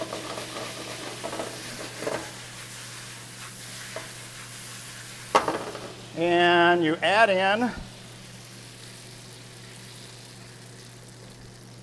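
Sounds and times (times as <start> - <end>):
handful of ingredient frying in a pan over low heat: 0.0 - 11.8
speech: 6.2 - 7.8.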